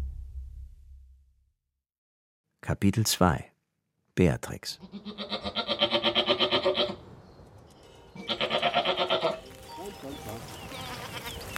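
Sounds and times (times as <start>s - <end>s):
speech: 2.7s - 3.5s, 4.2s - 5.6s
goat bleating: 4.7s - 7.0s, 8.1s - 9.5s, 10.6s - 11.5s
rustling and shuffling: 9.4s - 11.5s.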